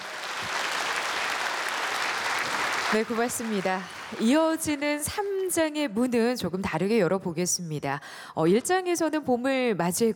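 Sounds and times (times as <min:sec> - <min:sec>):
audience applause at a traditional Korean music concert in Daejeon: 0:00.0 - 0:04.8
speech: 0:02.9 - 0:10.1.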